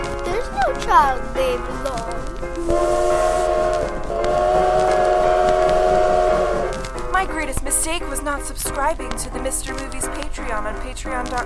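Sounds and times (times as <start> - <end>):
train rolling on rails: 0.0 - 11.4
speech: 0.9 - 3.3, 7.3 - 11.4
train whistle: 2.6 - 6.8.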